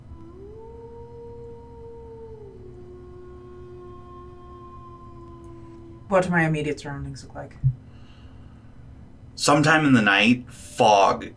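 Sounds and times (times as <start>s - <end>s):
long howls at a campsite before dawn: 0.0s - 6.8s
low rumble: 0.0s - 11.3s
speech: 6.1s - 7.8s, 9.5s - 11.3s.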